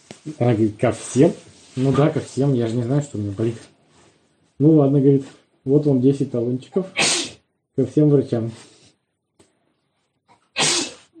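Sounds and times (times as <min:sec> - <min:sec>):
speech: 0:00.2 - 0:03.7, 0:04.6 - 0:07.1, 0:07.8 - 0:08.7
loud sneeze: 0:06.9 - 0:07.4, 0:10.4 - 0:11.1.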